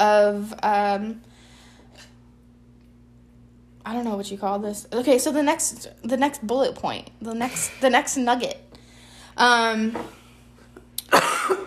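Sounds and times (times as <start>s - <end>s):
speech: 0.0s - 1.4s, 3.9s - 8.6s, 9.4s - 10.2s
cat coughing: 11.1s - 11.6s.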